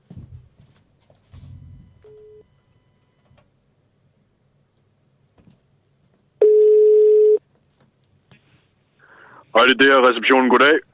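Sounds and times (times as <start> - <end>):
telephone ringing tone on an outgoing call: 1.7 - 3.2, 6.4 - 7.4
speech: 9.6 - 10.9.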